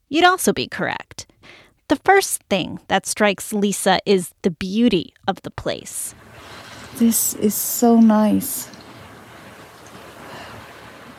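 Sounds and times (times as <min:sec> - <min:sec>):
speech: 0:00.1 - 0:06.2, 0:06.9 - 0:08.8
ocean waves near a lighthouse: 0:06.1 - 0:11.1.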